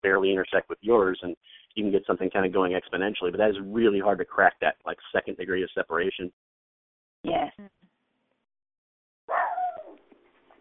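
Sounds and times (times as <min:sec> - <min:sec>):
speech: 0:00.0 - 0:06.5, 0:07.2 - 0:07.9
dog barking by a window: 0:09.3 - 0:10.0.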